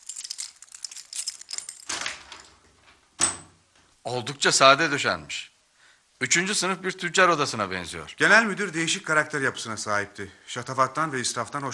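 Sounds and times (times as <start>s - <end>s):
keys jangling: 0.0s - 2.6s
speech: 4.0s - 5.5s, 6.2s - 11.7s.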